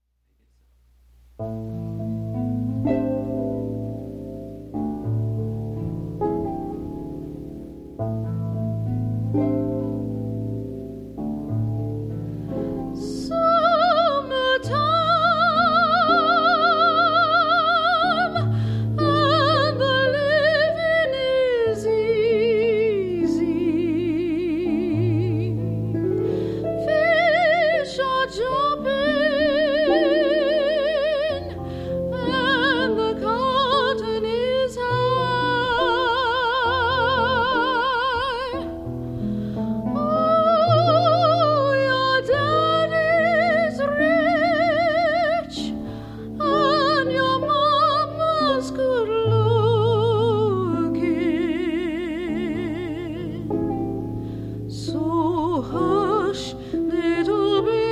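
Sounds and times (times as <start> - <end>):
harp: 1.4 - 57.9
soprano singing: 1.4 - 57.9.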